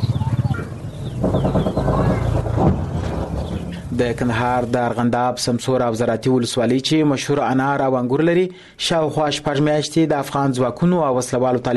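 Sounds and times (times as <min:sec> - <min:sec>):
birds clucking and calling among orchards and gardens in Kandahar: 0:00.0 - 0:05.0
speech: 0:04.0 - 0:11.7.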